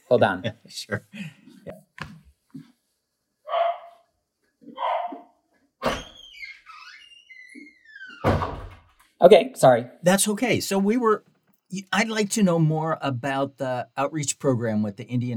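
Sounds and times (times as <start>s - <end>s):
speech: 0.1s - 1.8s, 9.2s - 15.3s
dog barking: 3.5s - 4.0s, 4.7s - 5.3s.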